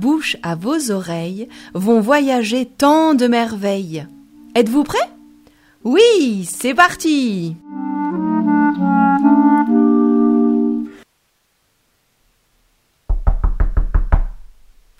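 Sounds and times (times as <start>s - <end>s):
speech: 0.0s - 5.2s, 5.8s - 8.1s
short melodic phrase: 7.6s - 11.0s
knocking on a door: 13.1s - 14.6s.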